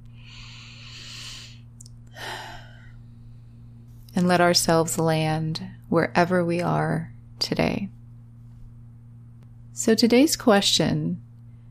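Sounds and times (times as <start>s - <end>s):
faint steady low hum: 0.0s - 11.6s
slow deep breath: 0.1s - 3.6s
speech: 4.2s - 8.0s, 9.8s - 11.2s.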